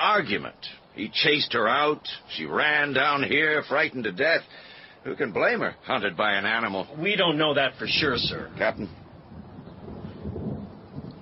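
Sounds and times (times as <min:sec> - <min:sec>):
faint hiss of rain-like noise: 0:00.0 - 0:11.1
speech: 0:00.2 - 0:09.0
thunder rumbling: 0:07.8 - 0:11.1.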